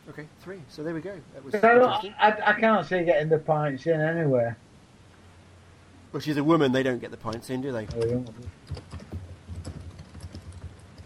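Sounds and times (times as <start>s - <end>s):
speech: 0.1s - 4.6s, 6.1s - 9.0s
fast vigorous typing on a computer keyboard: 7.9s - 11.0s.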